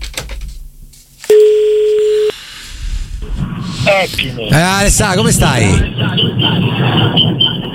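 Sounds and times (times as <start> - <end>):
steady electronic phone call connecting tone: 1.3 - 2.4
speech: 4.0 - 7.7.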